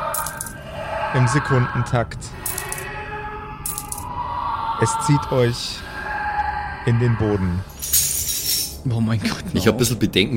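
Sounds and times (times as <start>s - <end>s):
metallic clinking of coins: 0.0s - 0.6s, 2.4s - 2.8s, 3.6s - 4.0s, 7.8s - 8.8s
steady humming background: 0.0s - 10.3s
speech: 1.1s - 2.4s, 4.8s - 5.9s, 6.8s - 8.0s, 8.8s - 10.3s.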